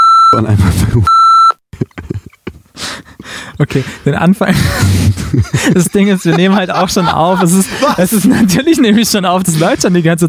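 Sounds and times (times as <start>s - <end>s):
censor beep: 0.0s - 0.5s, 1.1s - 1.6s
speech: 0.4s - 1.2s, 3.6s - 10.2s
laughter: 1.8s - 10.2s.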